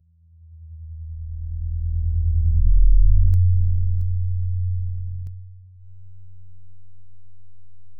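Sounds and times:
deep bass rumble at 200 Hz: 0.8 - 5.6.

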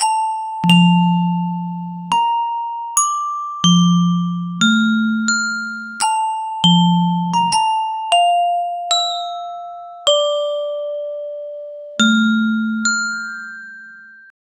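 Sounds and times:
happy tropical xylophone: 0.0 - 13.9.

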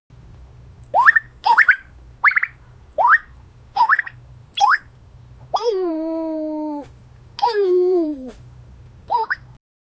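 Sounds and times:
cartoon turtle dinosaur sound: 0.9 - 4.9, 5.6 - 6.8, 9.1 - 9.5.

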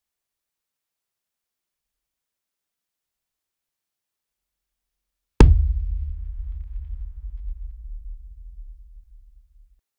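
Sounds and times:
smooth heavy punch impact thump: 5.4 - 9.6.

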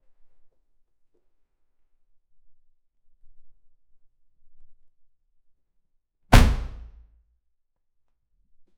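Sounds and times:
body slamming on floor: 6.4 - 7.0.

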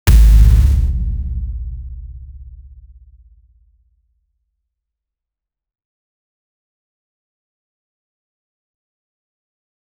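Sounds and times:
video game hit impact: 0.0 - 3.5.

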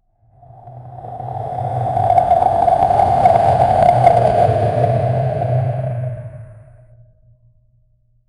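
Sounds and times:
deafening shaking roar: 0.4 - 6.8.

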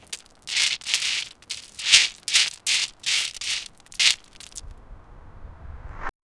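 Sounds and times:
cat leaping onto pebbles: 0.0 - 4.6.

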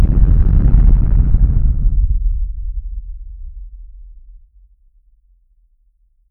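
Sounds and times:
explosion: 0.0 - 2.2.

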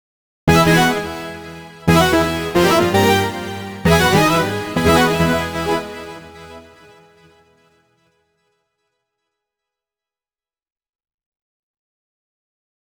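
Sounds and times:
ten-note 8-bit echoing robotic sequence: 0.5 - 7.0.

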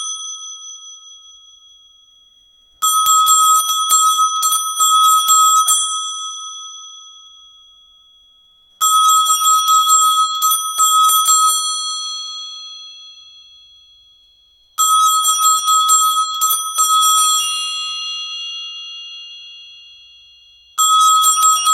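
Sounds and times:
Nokia Arabic mobile phone ringtone: 2.8 - 8.0, 8.8 - 13.9, 14.8 - 21.7.

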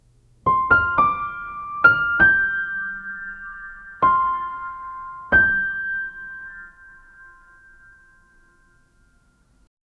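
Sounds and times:
playful piano: 0.4 - 9.4.

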